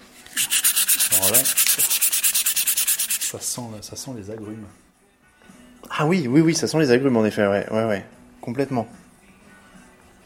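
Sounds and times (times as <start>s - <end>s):
exotic wood rubbed with glass wool: 0.3s - 3.3s
speech: 3.3s - 4.9s, 6.0s - 9.0s.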